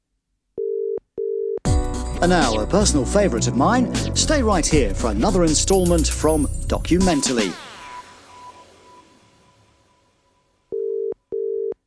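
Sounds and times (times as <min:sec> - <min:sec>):
short steady electronic phone tones while placing a call: 0:00.6 - 0:01.6, 0:10.7 - 0:11.8
speech: 0:02.2 - 0:07.6
loud dense burst of sound: 0:06.3 - 0:10.2.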